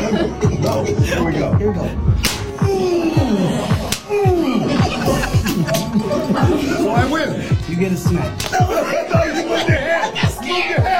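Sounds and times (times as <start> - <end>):
people chuckling: 0.0 - 1.4, 4.1 - 7.6, 8.4 - 10.9
speech: 0.1 - 4.3, 6.3 - 9.7
floppy tortilla slapping a face: 2.2 - 2.6, 3.8 - 4.1, 8.4 - 8.6.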